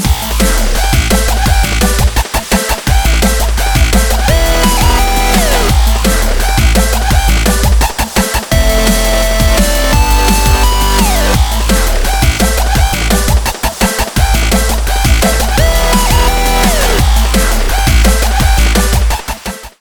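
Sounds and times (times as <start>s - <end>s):
drumstep remix: 0.0s - 19.7s.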